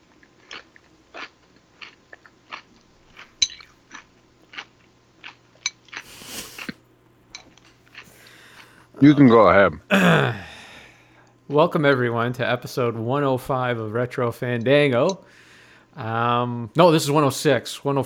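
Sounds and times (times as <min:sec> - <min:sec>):
crunchy chewing of food: 0:00.0 - 0:09.0
short rustling burst: 0:06.0 - 0:06.7
speech: 0:09.0 - 0:10.4, 0:11.5 - 0:15.4, 0:16.0 - 0:18.0.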